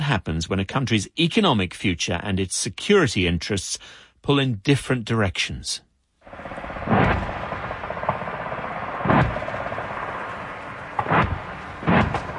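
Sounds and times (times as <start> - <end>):
speech: 0.1 - 7.2
heavy gunfire from a military live-fire exercise near Townsville, Queensland, Australia: 6.2 - 12.3
steady low rumbling background: 6.2 - 12.3.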